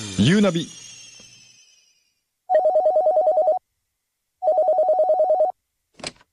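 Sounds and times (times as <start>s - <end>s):
speech: 0.2s - 0.8s
telephone ringing: 2.5s - 3.6s, 4.4s - 5.6s.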